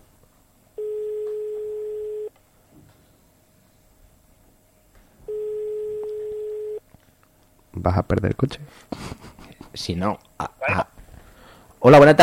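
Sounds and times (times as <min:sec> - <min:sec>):
telephone line tones during a call: 0:00.8 - 0:02.3, 0:05.3 - 0:06.8
speech: 0:07.8 - 0:09.2, 0:09.8 - 0:10.9, 0:11.8 - 0:12.2.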